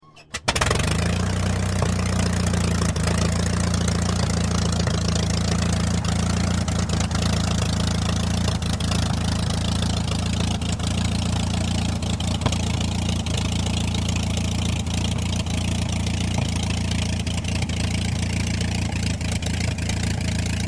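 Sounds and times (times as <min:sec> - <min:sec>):
Tiger Moth biplane engine: 0:00.4 - 0:20.6.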